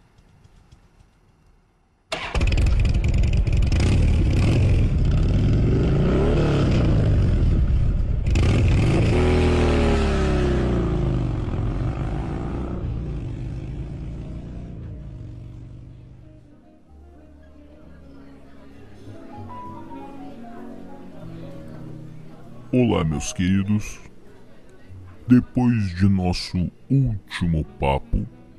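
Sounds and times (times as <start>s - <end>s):
motorcycle engine revving: 2.2s - 16.2s
speech: 22.8s - 24.1s, 25.3s - 28.4s.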